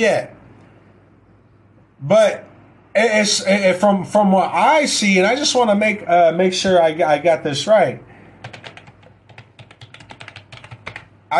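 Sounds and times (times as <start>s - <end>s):
speech: 0.0s - 0.4s, 2.0s - 8.1s
rapid uneven keyboard typing: 8.4s - 11.2s.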